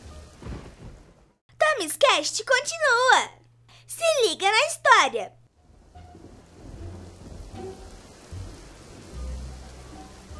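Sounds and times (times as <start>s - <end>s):
heavy rain pouring: 0.0s - 1.4s, 4.2s - 10.3s
low thunder rumbling and rolling: 0.0s - 1.4s, 5.6s - 10.3s
speech: 1.8s - 5.4s.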